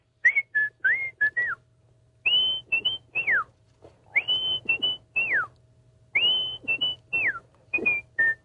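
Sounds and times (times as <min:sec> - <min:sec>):
person whistling a TV theme tune: 0:00.2 - 0:01.6, 0:02.3 - 0:03.5, 0:04.1 - 0:05.5, 0:06.2 - 0:08.4.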